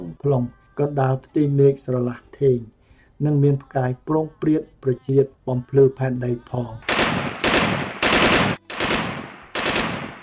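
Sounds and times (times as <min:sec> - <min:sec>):
speech: 0:00.2 - 0:07.2
gunfire from small and large guns around midnight behind a house in Chhuk village: 0:06.9 - 0:10.2
sharp gunshot crack: 0:06.9 - 0:10.2.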